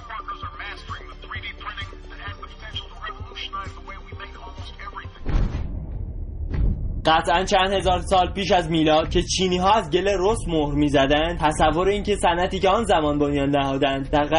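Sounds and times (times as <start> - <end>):
thin tinny music through a small 3D-printed loudspeaker: 0.0 - 5.4, 7.1 - 14.3
thump: 5.2 - 7.1
loud crackling rumble: 5.2 - 13.1
speech: 7.1 - 14.3.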